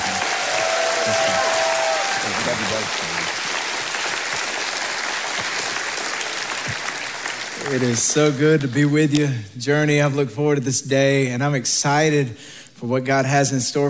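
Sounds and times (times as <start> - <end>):
whoops and cheers: 0.0 - 2.7
large church audience applauding to welcome a guest pastor: 0.0 - 8.9
speech: 1.0 - 1.5, 2.4 - 3.5, 7.7 - 13.8.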